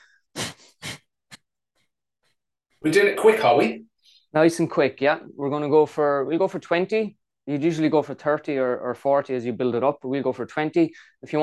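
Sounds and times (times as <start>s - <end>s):
rapid forceful breathing in and out through nose as a breathing exercise: 0.0s - 1.1s
speech: 2.8s - 11.4s.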